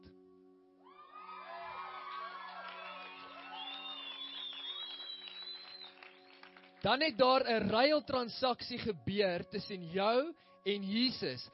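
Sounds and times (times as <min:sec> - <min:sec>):
large indoor congregation shouting, cheering, whooping and yelling: 0:00.9 - 0:04.2
speech: 0:06.8 - 0:11.5.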